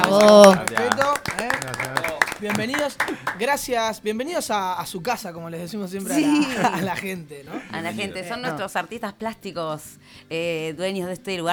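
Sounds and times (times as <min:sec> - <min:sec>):
laughter: 0:00.0 - 0:03.6, 0:06.0 - 0:08.9
small group clapping for children of an art workshop: 0:00.0 - 0:03.8
voices talking and calling out: 0:00.0 - 0:03.8, 0:05.9 - 0:10.0
speech: 0:00.1 - 0:11.5.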